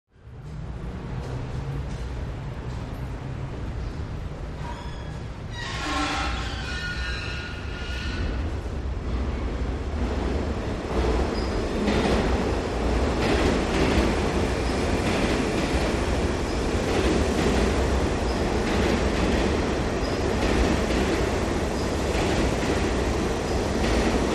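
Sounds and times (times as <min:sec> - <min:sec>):
subway train: 0:00.1 - 0:24.3.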